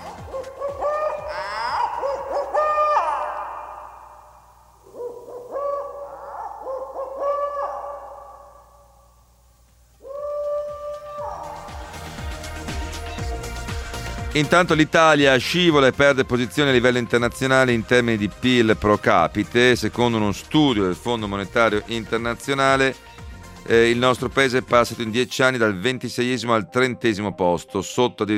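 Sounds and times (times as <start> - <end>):
owl hooting: 0.0 - 9.4, 10.0 - 12.8
speech: 14.4 - 23.1, 23.7 - 28.3.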